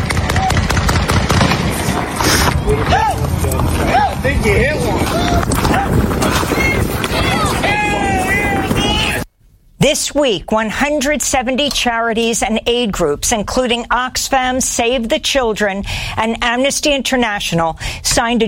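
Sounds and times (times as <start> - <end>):
rapid bursts of close loud gunfire: 0.0 - 7.8
voices shouting and cheering: 1.7 - 9.3
speech: 10.0 - 18.4.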